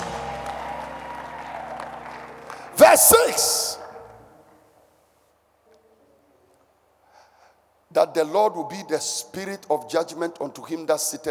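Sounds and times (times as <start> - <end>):
church audience clapping during a sermon: 0.0 - 3.9
speech: 2.8 - 3.8, 8.0 - 11.2.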